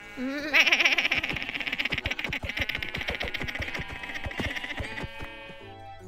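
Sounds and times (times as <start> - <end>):
sheep bleating: 0.0 - 6.0
laughter: 0.2 - 5.4.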